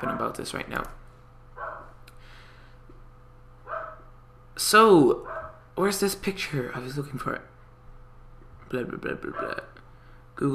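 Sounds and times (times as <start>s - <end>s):
dog barking: 0.0s - 0.4s, 1.6s - 2.0s, 3.6s - 4.1s, 5.2s - 5.6s, 9.3s - 9.7s
speech: 0.0s - 1.0s, 4.6s - 7.5s, 8.7s - 9.8s, 10.4s - 10.5s
steady low electrical hum: 0.0s - 10.5s.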